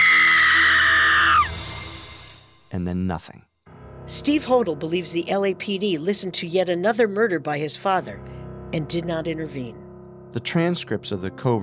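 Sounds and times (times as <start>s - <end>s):
woman's loud piercing scream in a basement: 0.0s - 1.5s
speech: 2.8s - 3.5s, 4.1s - 11.6s.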